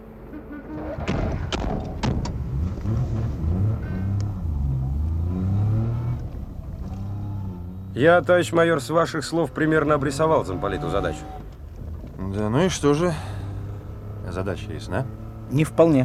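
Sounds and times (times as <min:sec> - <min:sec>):
passenger car engine starting and revving: 0:00.0 - 0:16.0
passenger car doors thumping shut: 0:01.0 - 0:03.3
speech: 0:08.0 - 0:11.5, 0:12.3 - 0:13.3, 0:14.3 - 0:16.0.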